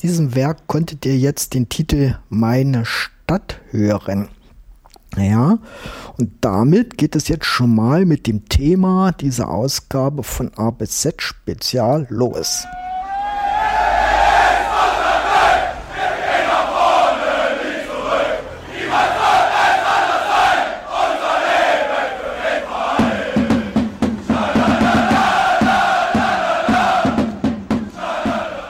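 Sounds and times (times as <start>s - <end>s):
speech: 0.0s - 4.4s, 5.1s - 12.9s
football supporters chanting at a home match in a stadium: 12.7s - 28.6s
football supporters' sharp rhythmic clapping: 22.5s - 28.6s.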